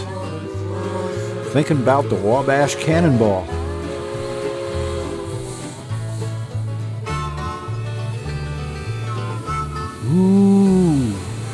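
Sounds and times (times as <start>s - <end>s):
freight train whistle: 0.0s - 6.2s, 7.0s - 11.5s
speech: 1.5s - 3.6s.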